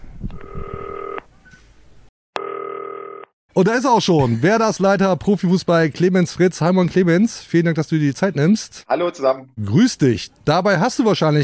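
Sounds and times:
green telephone ringing with an electronic dual-tone burst: 0.4 - 1.2, 2.4 - 3.3
speech: 3.6 - 11.4.

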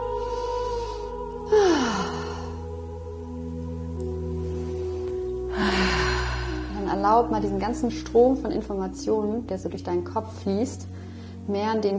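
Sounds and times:
soft steady tonal backdrop: 0.0 - 11.9
deep breath in and out during a guided breathing exercise: 0.1 - 2.7, 4.7 - 6.8, 10.9 - 11.5
speech: 7.1 - 10.9, 11.5 - 11.9.

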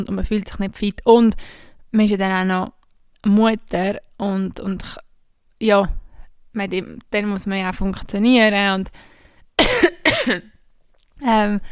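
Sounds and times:
speech: 0.0 - 5.0, 5.6 - 6.0, 6.6 - 10.5, 11.2 - 11.7
woman clearing her throat: 9.6 - 10.4
woman feeling unwell coughing: 9.6 - 10.5.

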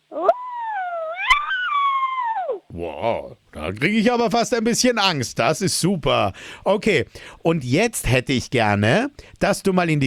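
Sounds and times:
person imitating an angry evil wolf howl: 0.1 - 2.7
speech: 2.8 - 10.0.

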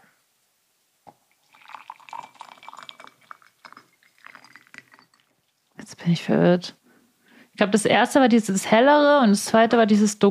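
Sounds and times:
water poured into a glass: 1.3 - 5.7
glass clink: 1.5 - 5.4
speech: 5.9 - 6.8, 7.6 - 10.2.

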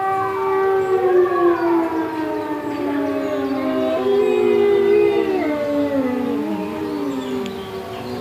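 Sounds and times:
village fire-brigade siren wailing in Austria: 0.0 - 8.1
wolves at a wolf research centre howling: 0.0 - 8.1.

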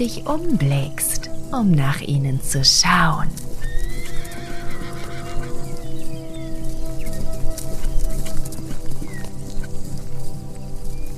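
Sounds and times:
speech: 0.0 - 3.5
hooves clip-clopping: 0.0 - 11.1
mare whinnying: 3.6 - 5.9.

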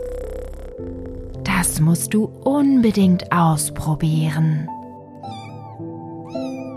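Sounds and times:
speech: 1.6 - 4.8
kittens meowing: 5.2 - 6.7.

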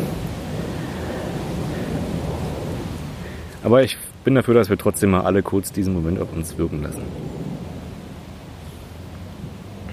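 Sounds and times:
airplane flying overhead: 0.0 - 3.6, 5.9 - 9.9
speech: 3.6 - 7.4.

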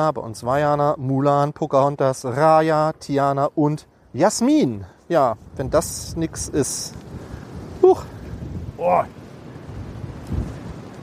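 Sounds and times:
speech: 0.0 - 7.2, 7.8 - 8.2, 8.8 - 9.2
strong storm wind roaring and buffeting the microphone: 2.5 - 11.0.

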